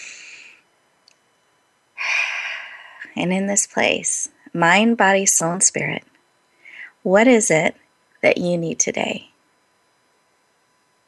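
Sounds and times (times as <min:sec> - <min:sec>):
deep breaths during a guided relaxation exercise: 0:00.0 - 0:00.6, 0:02.0 - 0:03.1
speech: 0:03.1 - 0:06.1, 0:07.0 - 0:09.3.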